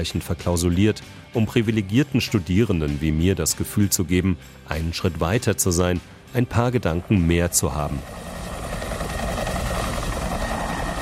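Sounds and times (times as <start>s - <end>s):
speech: 0.0s - 8.3s
helicopter rotor noise with engine drone: 5.7s - 11.0s.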